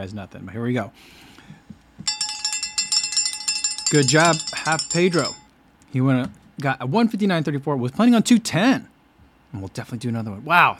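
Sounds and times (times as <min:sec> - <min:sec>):
speech: 0:00.0 - 0:01.3, 0:03.9 - 0:08.9, 0:09.5 - 0:10.7
bright metallic bell rung in celebration: 0:02.1 - 0:05.5.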